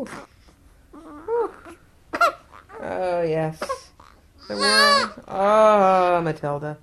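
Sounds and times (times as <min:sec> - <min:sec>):
speech: 0:00.0 - 0:00.3, 0:02.9 - 0:03.8, 0:04.5 - 0:06.8
two-week-old baby girl fussing and babbling while waking up: 0:00.0 - 0:05.4
two-week-old baby girl squealing: 0:01.0 - 0:02.9, 0:03.6 - 0:05.3.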